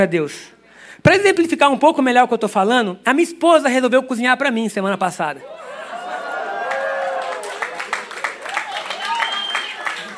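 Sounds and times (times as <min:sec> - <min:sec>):
speech: 0:00.0 - 0:05.8
cheerful crowd voices: 0:05.4 - 0:10.1
crowd laughter: 0:05.6 - 0:08.5, 0:09.6 - 0:10.1
audience applause: 0:05.7 - 0:10.1.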